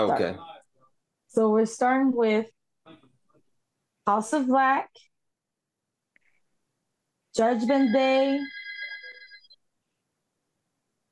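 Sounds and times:
speech: 0.0 - 0.5, 1.3 - 3.0, 4.0 - 5.1, 7.4 - 8.6
landline house phone ringing with a bright electronic trill: 7.4 - 9.6.

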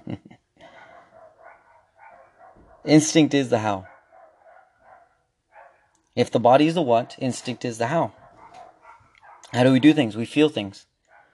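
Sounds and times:
dogs barking excitedly outside: 0.6 - 6.0, 6.8 - 9.8, 11.1 - 11.3
dogs' high yelping cries: 0.7 - 2.9, 3.6 - 6.0, 7.0 - 9.6
speech: 2.8 - 3.9, 6.2 - 8.2, 9.5 - 10.9.

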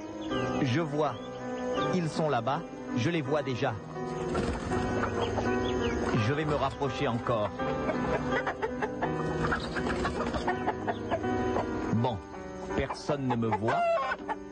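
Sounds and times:
speech: 0.3 - 5.4, 6.2 - 8.6, 12.8 - 14.0
chickens and roosters clucking in a henhouse behind a house: 3.4 - 14.5.

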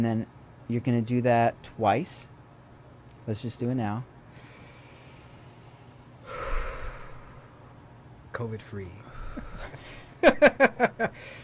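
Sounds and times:
speech: 0.0 - 2.3, 3.2 - 4.1, 8.4 - 11.4
deep inhale during a breathing exercise: 4.3 - 7.8, 9.0 - 10.1, 11.1 - 11.4.

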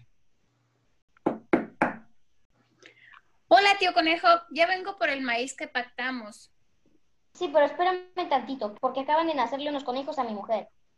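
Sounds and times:
firm knocking on a door: 1.2 - 2.1
speech: 3.8 - 6.6, 7.4 - 10.8.

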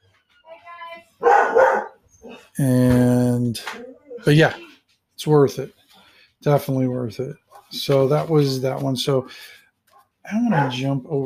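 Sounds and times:
female dog barking loudly: 1.2 - 2.5, 10.4 - 10.9
speech: 2.6 - 4.6, 5.2 - 5.8, 6.4 - 9.6, 10.3 - 11.2.

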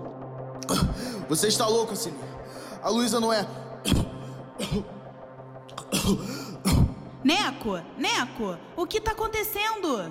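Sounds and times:
harsh raspy coughing: 0.6 - 1.3, 3.7 - 7.2
speech: 0.6 - 5.0, 6.1 - 6.4, 7.2 - 10.0.

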